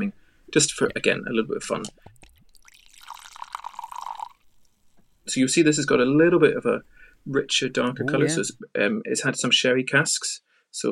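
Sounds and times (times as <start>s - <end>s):
speech: 0.0s - 2.2s, 5.3s - 10.8s
Highland Park 12 sherry-cask single malt whisky being poured: 1.8s - 5.0s.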